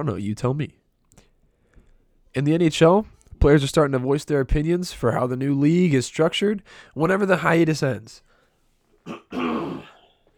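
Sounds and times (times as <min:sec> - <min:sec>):
speech: 0:00.0 - 0:00.8, 0:02.3 - 0:08.3, 0:09.0 - 0:09.6
throat clearing: 0:09.0 - 0:10.3.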